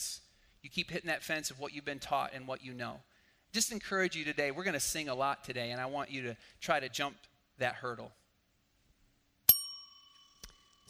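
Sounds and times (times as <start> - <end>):
speech: 0.6 - 8.2
bell struck: 9.5 - 10.8.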